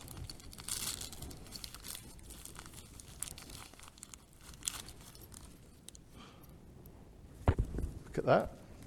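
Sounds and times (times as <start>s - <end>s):
paper wrapping of a package tearing and crinkling: 0.0s - 6.0s
speech: 8.2s - 8.6s.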